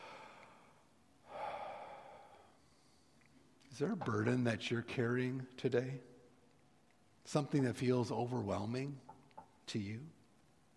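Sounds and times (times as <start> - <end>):
deep breath: 0.0 - 3.3
speech: 3.8 - 6.1, 7.3 - 9.1, 9.7 - 10.2.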